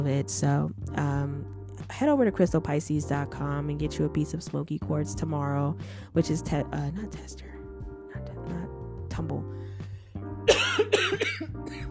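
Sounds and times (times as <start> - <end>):
speech: 0.0 - 7.6, 8.2 - 9.7
person coughing: 10.5 - 11.8
throat-clearing: 10.5 - 11.8.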